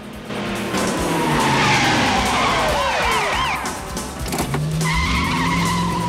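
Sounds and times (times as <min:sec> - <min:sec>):
red sports car engine roaring: 0:00.0 - 0:06.0
red sports car tires squealing in a police chase: 0:00.3 - 0:06.0.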